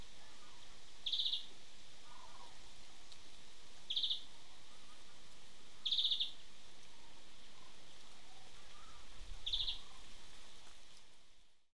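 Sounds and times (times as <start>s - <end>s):
constant low hiss: 0.0s - 11.7s
European greenfinch Chloris chloris rattling trills: 1.0s - 1.5s, 3.9s - 4.2s, 5.8s - 6.4s, 9.4s - 10.0s.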